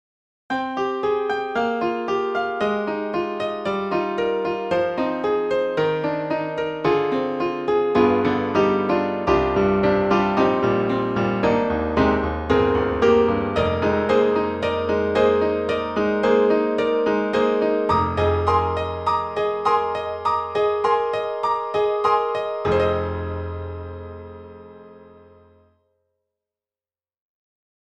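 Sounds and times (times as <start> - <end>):
jazz on a grand piano: 0.5 - 25.6.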